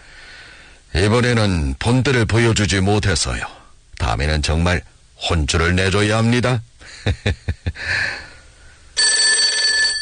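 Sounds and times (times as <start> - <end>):
speech: 1.0 - 8.2
telephone bell ringing: 9.0 - 10.0.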